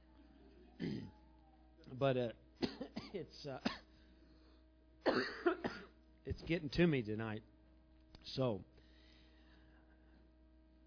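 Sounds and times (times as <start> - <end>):
smoker coughing: 0.8 - 1.1, 2.6 - 4.0, 5.0 - 6.0
throat clearing: 0.8 - 1.2, 2.6 - 3.9, 5.0 - 6.0
speech: 1.9 - 3.8, 5.0 - 5.6, 6.3 - 7.5, 8.2 - 8.7.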